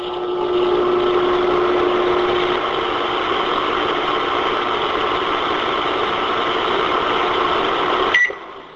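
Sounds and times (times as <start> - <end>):
microwave oven humming with low tonal drone: 0.0 - 8.7
microwave oven brief higher tone: 8.1 - 8.4.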